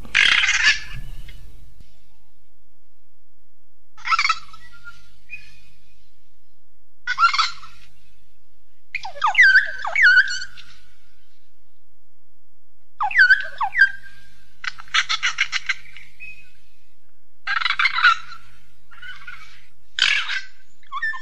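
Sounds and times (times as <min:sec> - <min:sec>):
North Island Kaka calling: 0:00.0 - 0:01.6, 0:04.0 - 0:05.7, 0:07.0 - 0:08.0, 0:09.0 - 0:10.9, 0:13.0 - 0:16.6, 0:17.4 - 0:21.2.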